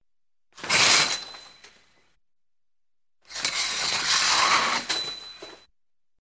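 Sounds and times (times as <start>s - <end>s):
shower curtain being drawn: 0.6s - 1.6s, 3.3s - 5.6s.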